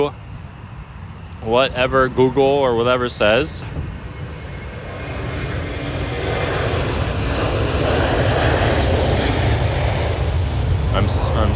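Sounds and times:
speech: 0.0s - 0.2s, 1.4s - 4.0s, 11.0s - 11.5s
airplane engine roaring at airport: 0.0s - 11.5s.

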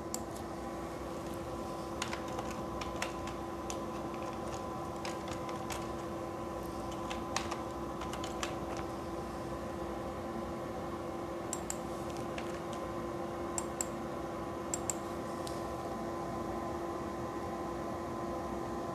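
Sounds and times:
steady low electrical hum: 0.0s - 18.9s
typing a URL on a computer keyboard: 1.2s - 6.2s, 6.9s - 9.0s.

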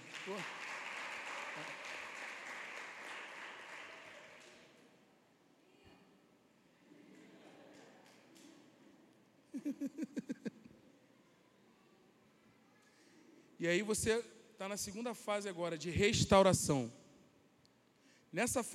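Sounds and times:
audience applause: 0.0s - 4.8s
speech: 0.2s - 0.6s, 1.6s - 1.9s, 9.6s - 10.3s, 13.6s - 17.0s, 18.3s - 18.7s
laughter: 9.5s - 10.8s.

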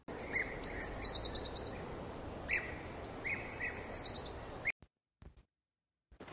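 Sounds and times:
birds singing: 0.0s - 4.7s.

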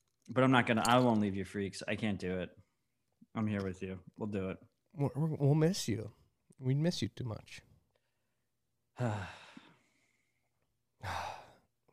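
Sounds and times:
speech: 0.3s - 2.6s, 3.4s - 7.7s, 9.0s - 9.4s, 11.0s - 11.3s
person gasping: 9.0s - 10.0s, 11.0s - 11.7s.

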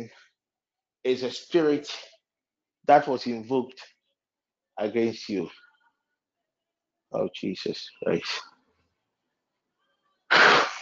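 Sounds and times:
speech: 1.0s - 2.1s, 2.8s - 3.9s, 4.8s - 5.6s, 7.1s - 8.5s
loud sneeze: 10.3s - 10.8s.

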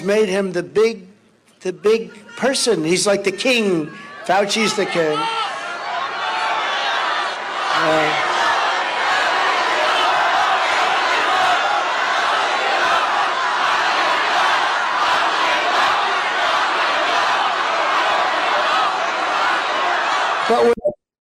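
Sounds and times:
speech: 0.0s - 5.5s, 20.5s - 20.8s
large rally crowd in Arizona chanting: 4.0s - 20.7s.

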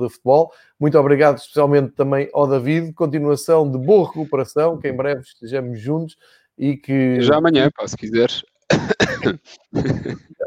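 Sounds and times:
speech: 0.0s - 10.4s
harsh chesty coughing fit: 8.7s - 10.4s
throat clearing: 8.7s - 10.4s.

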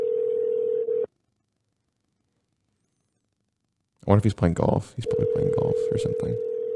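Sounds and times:
outgoing phone line ringing tone: 0.0s - 1.1s, 5.0s - 6.7s
speech: 4.1s - 6.5s.

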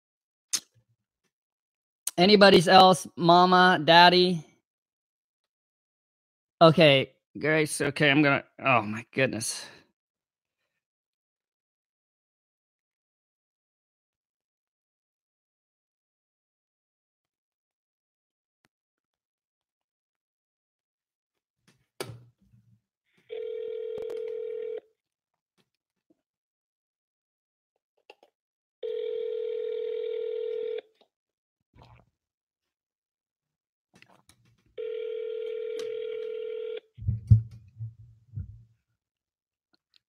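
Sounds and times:
speech: 2.2s - 4.5s, 6.6s - 9.8s
telephone line ringing tone of an unanswered call: 23.3s - 24.8s, 28.8s - 30.9s, 34.8s - 36.9s
low thump: 37.0s - 38.6s.

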